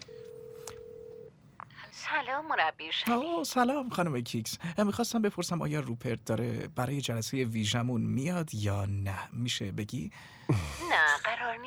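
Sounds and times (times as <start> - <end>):
electronic beep tone of a telephone being dialed: 0.0 - 1.3
low hum: 0.0 - 11.6
speech: 2.0 - 11.6.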